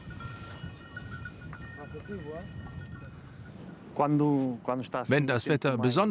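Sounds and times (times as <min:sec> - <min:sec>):
goat bells clinking and ringing: 0:00.0 - 0:04.4
speech: 0:02.0 - 0:02.8, 0:04.0 - 0:06.0.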